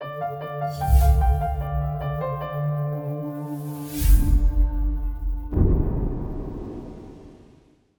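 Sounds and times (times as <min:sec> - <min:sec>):
dramatic piano stinger for logos: 0:00.0 - 0:07.5
dramatic whoosh: 0:00.7 - 0:02.7, 0:03.6 - 0:07.8.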